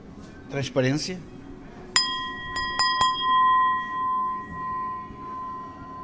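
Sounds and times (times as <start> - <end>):
speech: 0.5 - 1.4
taps on a crystal glass in a glass museum workshop: 2.0 - 6.0.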